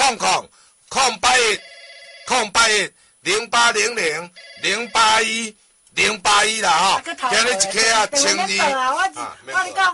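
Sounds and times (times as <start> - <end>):
speech: 0.1 - 1.7, 2.3 - 9.9
telephone ringing with one steady electronic tone: 1.4 - 2.6, 4.3 - 5.4.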